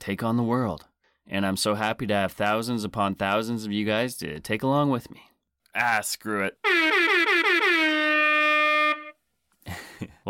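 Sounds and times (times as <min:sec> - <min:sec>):
speech: 0:00.0 - 0:07.8, 0:10.0 - 0:10.2
air horn blast: 0:06.6 - 0:09.2.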